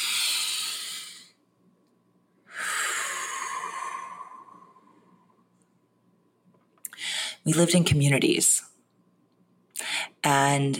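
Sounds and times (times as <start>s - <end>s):
deep breath: 0.0s - 1.4s, 2.4s - 5.5s
speech: 7.4s - 8.6s, 10.2s - 10.7s.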